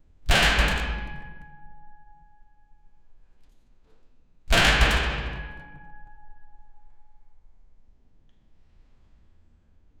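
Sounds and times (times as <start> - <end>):
heavy iron jail cell door in a prison: 0.3 - 3.3, 4.5 - 7.4.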